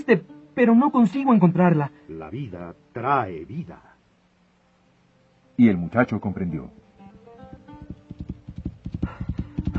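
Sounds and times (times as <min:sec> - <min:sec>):
speech: 0:00.0 - 0:03.9, 0:05.6 - 0:06.8
horse hooves clip-clopping on stony ground in the desert: 0:07.5 - 0:09.7.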